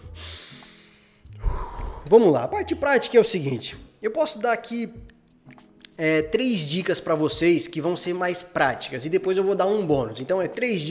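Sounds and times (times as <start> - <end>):
loud rushing exhale: 0.0 - 2.1
slow airy breath drawn in: 0.1 - 2.1
speech: 2.0 - 5.1, 6.0 - 10.8.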